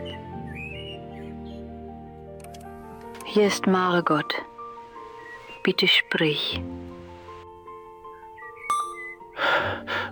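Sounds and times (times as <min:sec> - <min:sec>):
blackbird singing: 0:00.0 - 0:01.9, 0:04.6 - 0:06.6, 0:08.0 - 0:09.4
speech: 0:03.3 - 0:04.5, 0:05.6 - 0:06.9.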